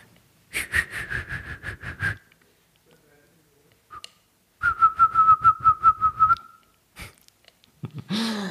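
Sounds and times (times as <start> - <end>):
whistled imitation of a call: 0.5 - 2.3, 3.9 - 7.1.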